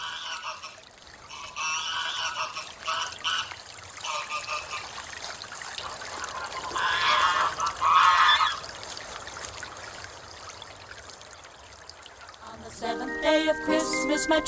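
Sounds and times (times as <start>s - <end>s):
Greylag geese honking: 0.0s - 4.9s, 6.1s - 8.6s
faint trickle of water: 0.0s - 13.6s
speech: 14.2s - 14.4s.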